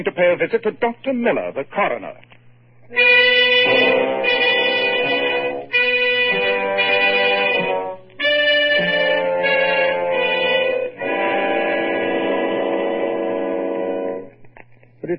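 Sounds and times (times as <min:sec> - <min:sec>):
speech: 0:00.0 - 0:02.3, 0:02.9 - 0:04.4
loud long train horn blasts: 0:03.0 - 0:14.4.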